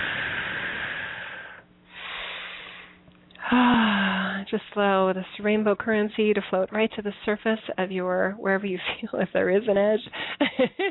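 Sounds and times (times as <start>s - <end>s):
slow deep breath during a guided meditation: 0.0s - 4.5s
speech: 3.5s - 3.8s, 4.5s - 10.8s.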